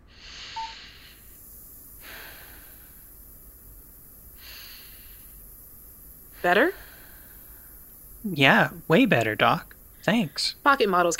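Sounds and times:
deep breaths through an oxygen therapy machine's nose piece: 0:00.0 - 0:08.3
speech: 0:06.4 - 0:06.8, 0:08.2 - 0:11.1.

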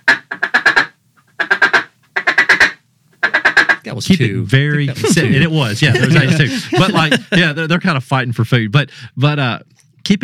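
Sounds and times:
duck call imitating a hen mallard quacking: 0:00.0 - 0:03.9
speech: 0:03.9 - 0:10.2
laughter: 0:04.0 - 0:07.8.

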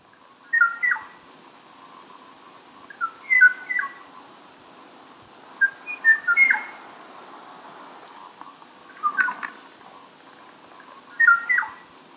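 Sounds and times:
faint hiss: 0:00.0 - 0:12.1
lone o'o bird singing short fluting phrases: 0:00.4 - 0:01.2, 0:02.9 - 0:04.1, 0:05.6 - 0:06.8, 0:08.9 - 0:09.6, 0:11.1 - 0:11.8.

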